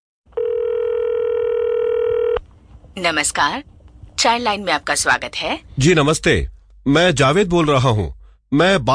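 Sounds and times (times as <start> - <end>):
telephone ringing or dial tone: 0.3 - 2.4
speech: 3.0 - 8.9.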